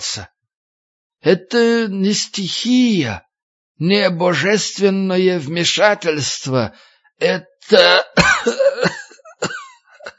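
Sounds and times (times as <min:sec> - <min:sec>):
speech: 0:00.1 - 0:00.4, 0:01.2 - 0:09.6
man acting out an old man coughing hoarsely: 0:07.8 - 0:10.1.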